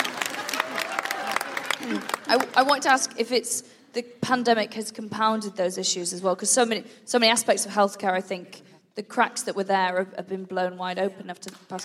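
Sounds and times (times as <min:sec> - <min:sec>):
small live audience applause: 0:00.0 - 0:02.8
speech: 0:01.9 - 0:11.8.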